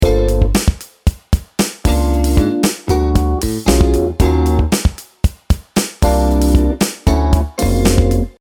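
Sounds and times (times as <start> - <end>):
minor major seventh and altered major seventh chords: 0.0 - 0.9, 1.8 - 5.0, 6.0 - 8.3.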